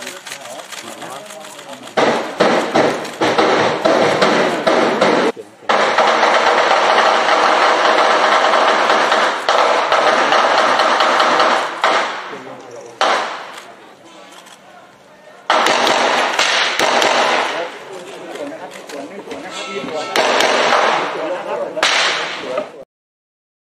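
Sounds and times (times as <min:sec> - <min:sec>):
voices during a police operation in Thailand: 0:00.0 - 0:16.4, 0:17.2 - 0:22.8
rapid gunfire outdoors during a police operation in Thailand: 0:01.9 - 0:12.4, 0:13.0 - 0:13.6, 0:15.5 - 0:17.7, 0:20.2 - 0:21.2, 0:21.8 - 0:22.4.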